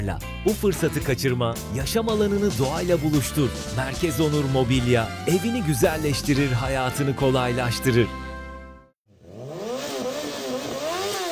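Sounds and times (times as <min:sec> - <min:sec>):
speech: 0:00.0 - 0:08.2
motorcycle engine revving: 0:09.1 - 0:11.2.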